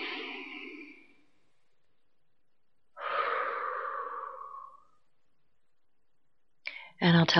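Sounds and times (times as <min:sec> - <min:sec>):
deep breathing during a breathing exercise: 0:00.0 - 0:02.0, 0:02.9 - 0:05.6.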